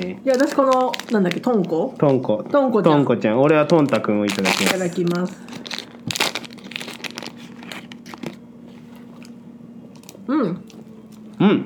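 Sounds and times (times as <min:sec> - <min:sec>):
wrapper on a Kagoshima sweet potato cake crinkling as it is unwrapped: 0:00.0 - 0:02.4, 0:03.4 - 0:08.4
speech: 0:00.0 - 0:05.8, 0:10.3 - 0:10.6, 0:11.4 - 0:11.6.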